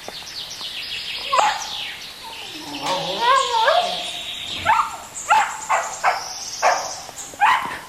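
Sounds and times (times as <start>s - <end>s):
faint bird chirps: 0.0s - 7.3s
farm dog whining yelps: 1.2s - 7.8s
farm dog barking in short sharp yaps: 1.3s - 1.8s, 3.4s - 7.8s.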